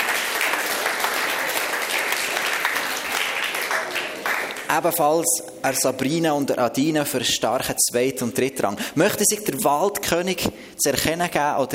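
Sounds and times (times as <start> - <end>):
audience applause: 0.0 - 4.8
speech: 4.7 - 11.7.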